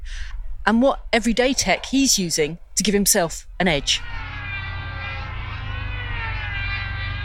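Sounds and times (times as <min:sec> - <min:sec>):
speech: 0:00.7 - 0:04.1
jet aircraft engine roaring overhead: 0:04.0 - 0:07.2.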